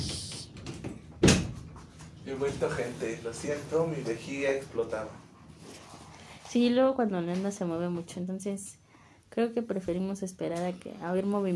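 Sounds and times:
door shutting thud: 0.0s - 1.6s
rustling and shuffling movement: 0.0s - 8.2s
speech: 2.3s - 5.3s, 6.5s - 11.5s.

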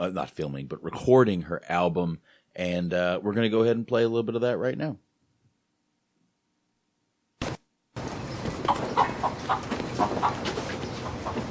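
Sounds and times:
speech: 0.0s - 5.0s
chickens clucking: 8.0s - 11.5s.

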